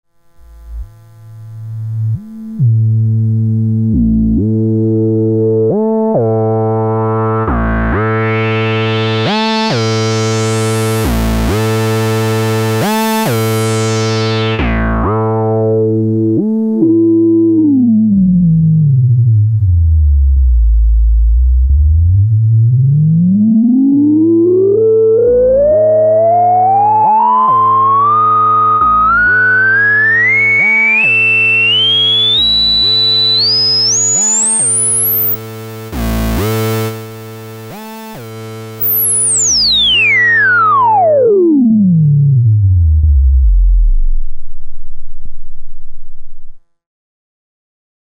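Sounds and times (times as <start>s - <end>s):
Octave Kitten II synthesizer VCF: 0.4s - 46.6s.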